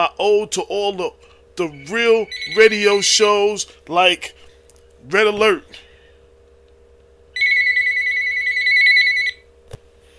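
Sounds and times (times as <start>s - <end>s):
speech: 0.0s - 4.4s, 5.0s - 5.8s
low steady hum: 0.0s - 10.1s
telephone ringing with an electronic trill: 2.2s - 3.1s, 7.3s - 9.5s.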